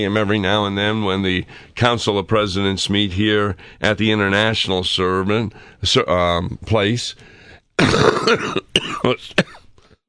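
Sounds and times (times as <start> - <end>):
speech: 0.0 - 9.6
throat-clearing hacks: 7.8 - 9.7
person coughing: 7.8 - 9.8.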